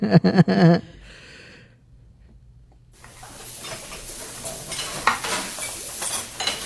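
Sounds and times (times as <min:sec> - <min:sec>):
soft sizzle: 0:03.0 - 0:06.6
spoon stirring a cooking pot: 0:03.0 - 0:06.6.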